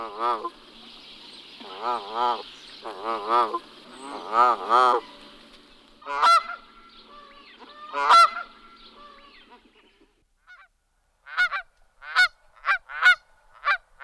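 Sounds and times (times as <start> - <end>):
Canada goose Branta canadensis honking: 0.0 - 0.6, 1.6 - 5.3, 6.0 - 9.7, 11.3 - 14.0.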